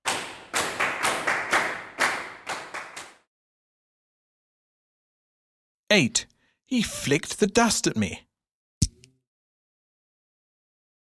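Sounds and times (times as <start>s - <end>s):
loud hand clapping: 0.0s - 3.3s
speech: 5.9s - 8.3s.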